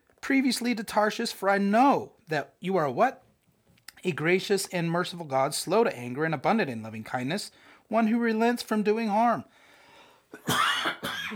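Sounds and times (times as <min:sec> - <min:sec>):
speech: 0:00.3 - 0:03.2, 0:04.0 - 0:09.6, 0:10.3 - 0:10.6
harsh raspy coughs: 0:10.3 - 0:11.3
person clearing throat: 0:10.4 - 0:11.3.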